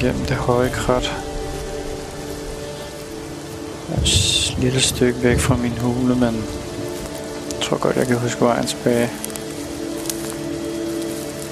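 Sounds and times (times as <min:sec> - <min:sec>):
speech: 0:00.0 - 0:01.2, 0:03.9 - 0:06.7, 0:07.7 - 0:09.3
faint scattered drips: 0:00.0 - 0:11.4
heavy rain: 0:00.0 - 0:11.4.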